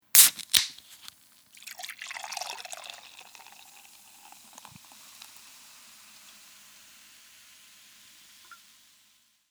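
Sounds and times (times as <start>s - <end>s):
beer can opening: 0.1s - 5.4s
beer pouring into a glass: 1.5s - 9.1s.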